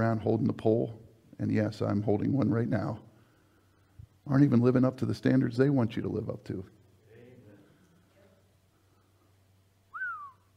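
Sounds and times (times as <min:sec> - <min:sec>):
speech: 0:00.0 - 0:03.1, 0:04.2 - 0:06.8
person whistling a short bright downward glide: 0:09.9 - 0:10.5.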